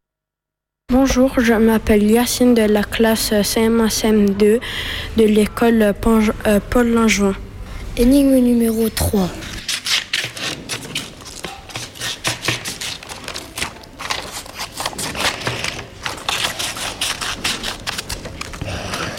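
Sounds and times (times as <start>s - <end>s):
speech: 1.0s - 9.5s
scissors snipping through paper: 9.6s - 19.1s.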